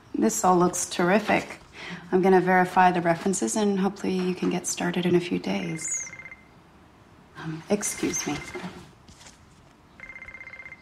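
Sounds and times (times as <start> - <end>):
speech: 0.2 - 6.1, 7.4 - 8.9
telephone with rapid trilling electronic ring: 5.8 - 6.6, 7.8 - 8.9, 10.0 - 10.8.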